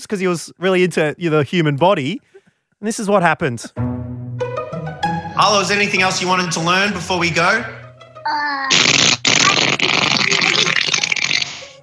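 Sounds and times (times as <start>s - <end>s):
speech: 0.0s - 4.0s, 5.4s - 8.9s
loud drawn-out wet sputtering fart noise: 8.3s - 11.8s.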